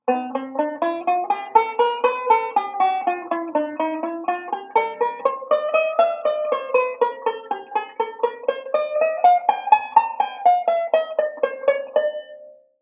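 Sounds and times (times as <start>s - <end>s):
banjo playing connected thirds slowly: 0.0s - 12.7s.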